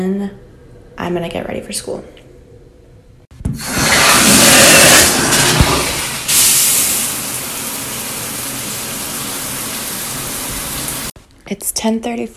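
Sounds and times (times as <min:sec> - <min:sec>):
speech: 0:00.0 - 0:00.4, 0:01.0 - 0:02.2, 0:11.5 - 0:12.3
shower water running: 0:03.6 - 0:11.2.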